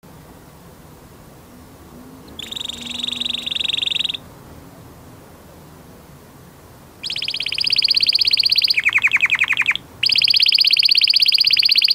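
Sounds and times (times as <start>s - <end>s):
faint background hiss: 0.0s - 11.9s
male Belgian canary singing trills: 2.2s - 4.3s, 7.0s - 11.9s.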